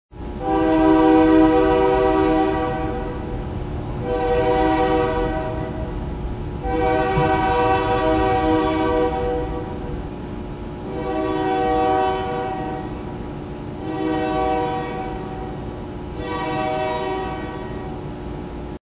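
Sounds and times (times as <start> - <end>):
train horn: 0.2 - 18.4.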